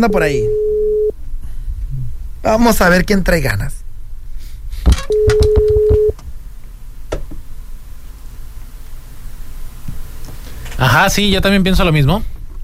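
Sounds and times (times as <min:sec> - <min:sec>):
speech: 0:00.0 - 0:00.6, 0:02.4 - 0:03.8, 0:10.8 - 0:12.4
low hiss: 0:00.0 - 0:12.6
ringback tone of an outgoing telephone call: 0:00.5 - 0:01.1, 0:05.1 - 0:06.1
sharp clicks and knocks: 0:04.9 - 0:06.3.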